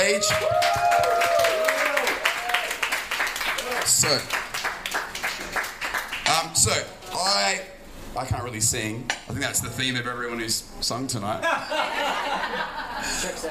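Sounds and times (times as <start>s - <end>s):
speech: 0.0s - 1.0s, 3.9s - 4.4s, 6.6s - 13.4s
shouts and whoops from the crowd: 0.0s - 2.8s
crowd applauding: 0.0s - 6.4s
laughter: 11.4s - 13.4s.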